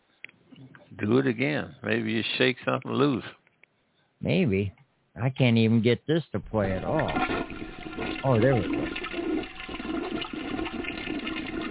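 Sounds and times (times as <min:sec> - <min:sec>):
speech: 0:01.0 - 0:03.4, 0:04.2 - 0:07.5, 0:08.2 - 0:09.0
toilet flushing with rushing swirling water: 0:06.5 - 0:11.6.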